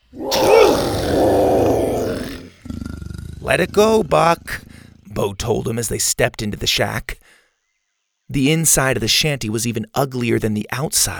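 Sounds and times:
dinosaur roaring at a velociraptor: 0.0 - 5.2
speech: 3.5 - 7.2, 8.3 - 11.1.

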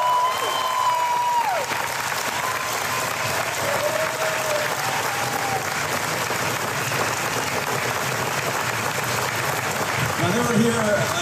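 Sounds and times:
whistles and cheers from the audience: 0.0 - 5.9
sustained applause from a large audience at Walt Disney World: 0.0 - 11.2
speech: 10.5 - 11.2.

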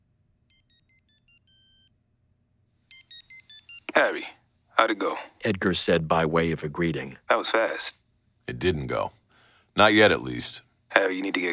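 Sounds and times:
faint low hum: 0.0 - 11.5
phone ringing electronically on an outgoing call: 0.5 - 1.9, 2.9 - 4.3
short stepped phone beeps on an outgoing call: 0.5 - 1.9, 2.9 - 4.0
speech: 4.0 - 9.2, 9.8 - 11.5.

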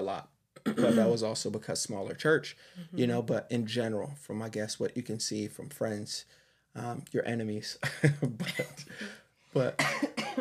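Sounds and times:
speech: 0.1 - 10.3
person coughing with a lingering coughing bug: 0.6 - 1.2, 8.4 - 10.3.

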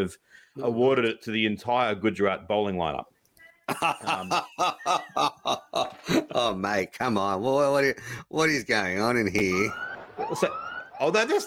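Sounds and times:
speech: 0.0 - 3.1, 3.7 - 11.4
laughter: 3.7 - 6.6
police siren sound effect wail: 9.4 - 11.4.

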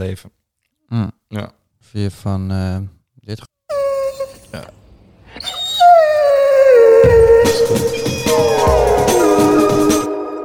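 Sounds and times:
speech: 0.0 - 3.5, 4.5 - 4.8
dog howling: 3.7 - 4.5, 5.4 - 10.4.

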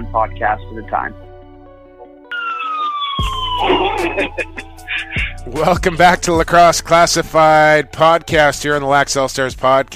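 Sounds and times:
speech: 0.1 - 1.2, 3.6 - 9.9
emergency vehicle siren wailing: 2.3 - 5.4
laughter: 3.6 - 6.2.

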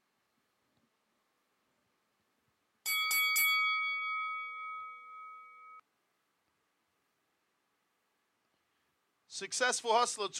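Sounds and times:
bright bell ding with sustained metallic tone: 2.9 - 5.8
speech: 9.3 - 10.3.

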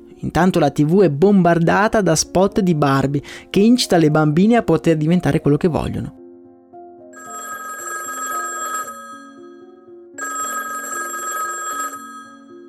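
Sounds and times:
soft musical backing: 0.0 - 12.6
speech: 0.2 - 6.2
telephone bell ringing in offices: 7.2 - 12.6.

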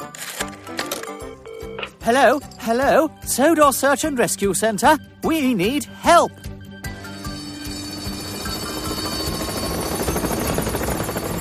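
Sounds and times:
speech: 2.1 - 6.5
helicopter rotor chopping: 7.0 - 11.3.

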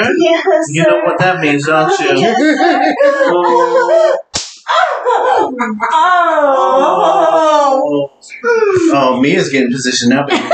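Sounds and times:
speech: 0.0 - 10.5
laughter: 1.2 - 7.9, 10.1 - 10.5
sharp slap from a combination spanking device: 4.3 - 4.8.

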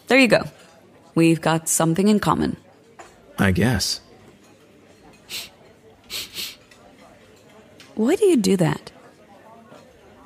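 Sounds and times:
speech: 0.1 - 0.6, 1.2 - 2.6, 3.4 - 4.0, 5.3 - 5.5, 8.0 - 8.9
person sniffing: 5.3 - 5.5, 6.1 - 6.6.

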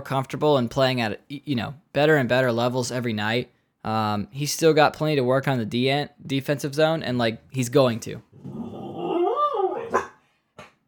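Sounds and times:
speech: 0.0 - 8.6
dog giving a howl-like bark: 8.5 - 10.1
dog giving short sharp barks: 9.9 - 10.7.

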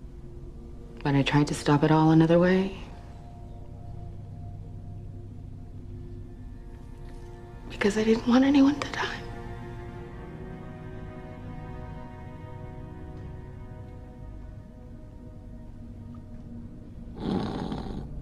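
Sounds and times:
speech: 1.0 - 2.9, 7.8 - 9.2
man snoring while asleep: 17.2 - 18.1.

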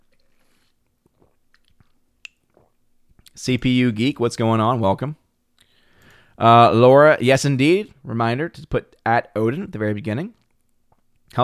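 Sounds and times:
sipping water: 0.0 - 3.4
wet swallowing and gulping: 0.0 - 3.4
speech: 3.4 - 5.2, 6.4 - 10.4.

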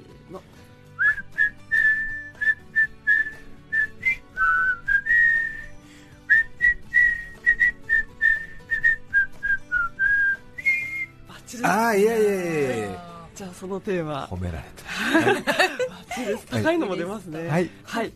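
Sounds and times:
speech: 0.3 - 0.6, 11.6 - 12.6, 13.6 - 18.1
people whistling a Christmas song together: 1.0 - 11.2
laughter: 14.8 - 17.1.

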